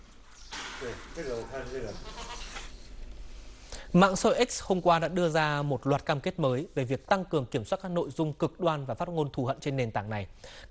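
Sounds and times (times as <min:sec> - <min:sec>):
speech: 0:00.8 - 0:02.4, 0:03.9 - 0:10.6
dairy goats bleating: 0:01.9 - 0:02.7.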